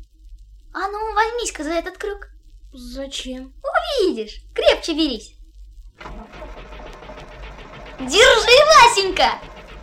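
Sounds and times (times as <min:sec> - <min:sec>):
speech: 0:00.8 - 0:05.4, 0:08.0 - 0:09.5
heavy truck engine rumbling and revving: 0:06.0 - 0:09.8.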